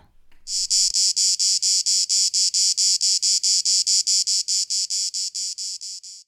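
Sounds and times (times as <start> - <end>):
cicadas buzzing: 0.0 - 6.2.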